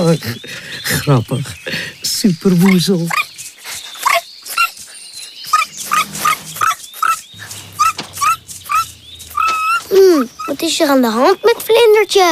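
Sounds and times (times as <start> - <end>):
speech: 0.0 - 3.2, 10.6 - 12.3
small dog barking: 4.0 - 4.8, 5.5 - 10.6.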